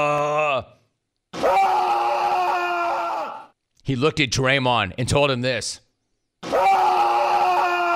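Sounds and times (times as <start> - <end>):
man crying out in pain after eye poke: 0.0 - 0.8, 1.4 - 3.5, 6.4 - 7.9
speech: 3.9 - 5.8.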